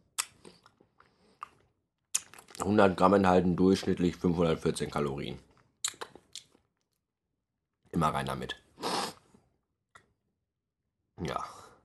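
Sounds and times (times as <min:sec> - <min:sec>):
wet chewing and mouth sounds from eating warmed runny Nutella off a spoon: 0:00.0 - 0:02.7, 0:05.5 - 0:07.0
speech: 0:02.6 - 0:05.5, 0:08.0 - 0:08.6.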